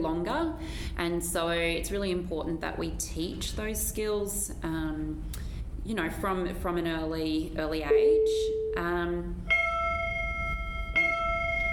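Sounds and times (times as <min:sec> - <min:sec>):
speech: 0:00.0 - 0:09.6
low room hum: 0:00.0 - 0:11.7
school bell chiming in a classroom: 0:09.5 - 0:11.7.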